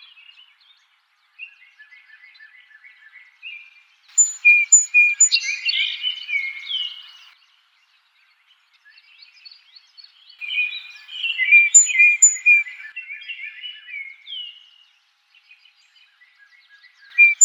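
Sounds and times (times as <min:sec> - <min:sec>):
Song Sparrow song: 0:00.0 - 0:17.4.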